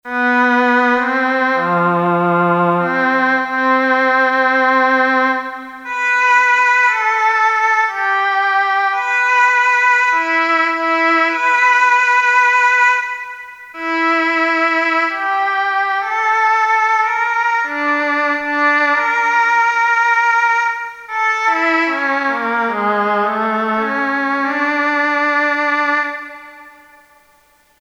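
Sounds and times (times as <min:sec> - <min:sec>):
oboe on Korg DSS-1 synthesizer: 0:00.1 - 0:27.5.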